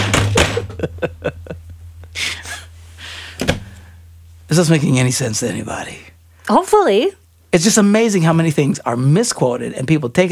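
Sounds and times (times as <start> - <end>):
hand slamming on a desk: 0.0 - 0.8, 3.4 - 3.7
low hum: 0.0 - 10.3
laughter: 0.3 - 2.7
speech: 4.5 - 10.3.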